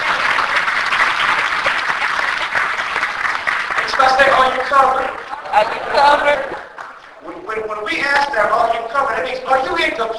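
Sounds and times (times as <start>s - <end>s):
crowd applauding: 0.0s - 7.4s
speech: 4.6s - 6.6s, 7.8s - 10.1s.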